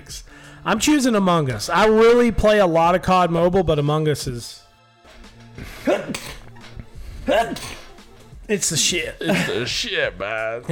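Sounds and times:
speech: 0:00.1 - 0:04.6, 0:08.5 - 0:10.6
sneezing: 0:05.8 - 0:06.3, 0:07.3 - 0:07.7.

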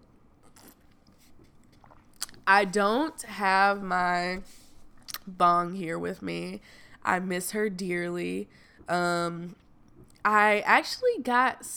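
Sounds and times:
sipping and chewing boba tea: 0:00.3 - 0:02.5, 0:04.8 - 0:05.3
slurping: 0:00.4 - 0:02.4
speech: 0:02.5 - 0:04.6, 0:05.3 - 0:09.6, 0:10.2 - 0:11.7.

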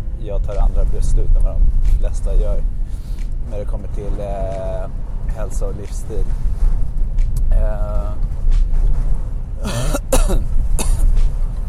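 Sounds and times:
low rumble: 0:00.0 - 0:11.6
speech: 0:00.2 - 0:06.8, 0:07.5 - 0:08.4
harsh throaty coughing: 0:09.6 - 0:11.1.

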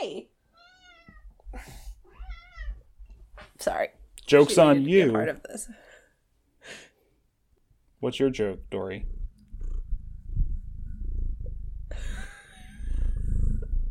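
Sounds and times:
cat meowing loudly: 0:00.6 - 0:01.3, 0:02.1 - 0:02.8
speech: 0:03.6 - 0:05.8, 0:08.0 - 0:09.1
low rumble: 0:08.4 - 0:13.8
cat purring loudly into microphone: 0:08.5 - 0:13.8.

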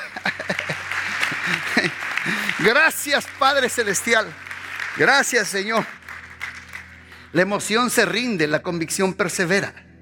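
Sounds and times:
laughter: 0:00.0 - 0:02.9
audience applauding in praise of Christ: 0:00.0 - 0:07.5
speech: 0:02.6 - 0:06.0, 0:07.3 - 0:09.9.

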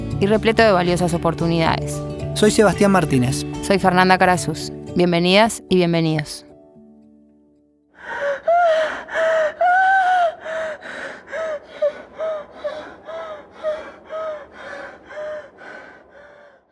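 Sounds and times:
speech: 0:00.2 - 0:06.5
woman in labor gasping and panting: 0:08.0 - 0:16.6.

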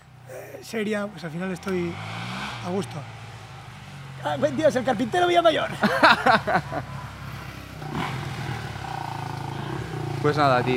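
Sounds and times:
motorcycle engines rumbling: 0:00.0 - 0:10.7
speech: 0:00.6 - 0:03.2, 0:04.2 - 0:07.0, 0:10.2 - 0:10.7
loud laughter-like voices: 0:05.7 - 0:06.9.

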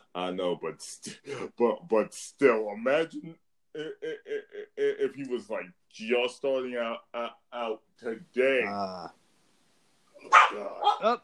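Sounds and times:
speech: 0:00.2 - 0:09.2, 0:10.2 - 0:11.2
pet dog barking with a rough yelp: 0:10.2 - 0:11.1.

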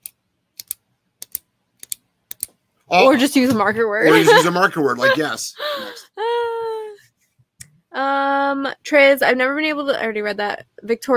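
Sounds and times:
pen clicking as a dog-training marker: 0:00.0 - 0:02.6
speech: 0:02.9 - 0:06.1, 0:08.5 - 0:11.1
laughter: 0:04.0 - 0:06.0.

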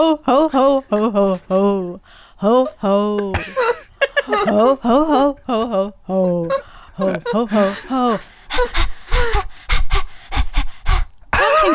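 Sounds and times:
speech: 0:00.0 - 0:03.8, 0:04.4 - 0:06.0, 0:07.0 - 0:08.3
laughter: 0:02.5 - 0:08.3
person imitating panting with breathy huffs: 0:06.3 - 0:11.7.

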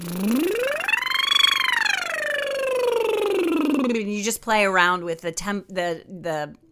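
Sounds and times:
vocal siren warm-up exercise sliding pitch up and down: 0:00.0 - 0:04.1
speech: 0:04.3 - 0:06.6.

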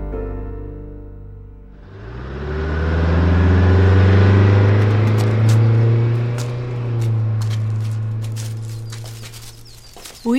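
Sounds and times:
bus engine rumbling as it pulls away from a stop: 0:01.8 - 0:10.3
birds chirping: 0:04.4 - 0:10.3.

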